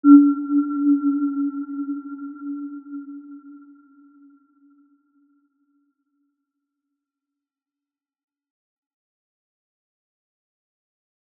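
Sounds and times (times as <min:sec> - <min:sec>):
healing soundscape note E4 mezzo-forte: 0:00.0 - 0:04.4.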